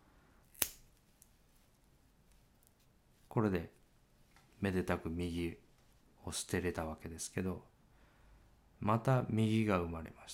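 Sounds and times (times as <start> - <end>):
scissors cutting through paper: 0.6 - 0.8
speech: 3.4 - 3.8, 4.6 - 5.6, 6.2 - 7.7, 8.8 - 10.3.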